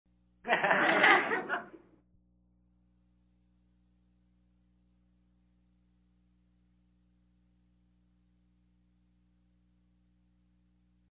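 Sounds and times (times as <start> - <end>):
short laughter of a small group: 0.5 - 2.0.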